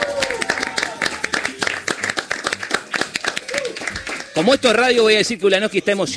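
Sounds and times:
small group applauding for a birthday: 0.0s - 5.2s
speech: 4.4s - 6.1s.

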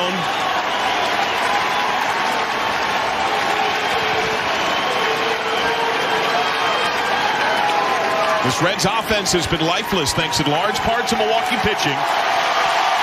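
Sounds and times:
large baseball stadium crowd applauding and cheering: 0.0s - 13.0s
speech: 8.4s - 12.6s.

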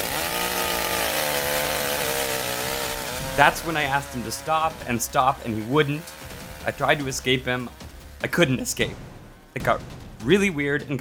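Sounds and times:
chainsaw engine running with a loud buzzing drone: 0.0s - 10.9s
speech: 3.4s - 10.9s.

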